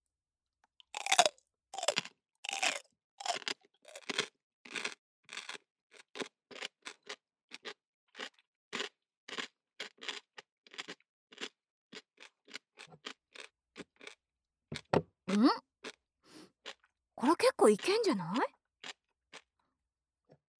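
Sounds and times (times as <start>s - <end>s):
crunchy pickled daikon radish being bitten and chewed: 1.0s - 7.0s
speech: 15.4s - 15.6s, 17.6s - 18.6s.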